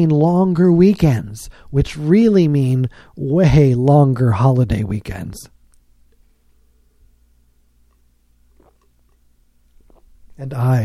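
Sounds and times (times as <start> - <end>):
speech: 0.0 - 5.6, 10.4 - 10.8
low steady hum: 0.0 - 10.8
soft slurping sip of a beverage: 7.9 - 10.4.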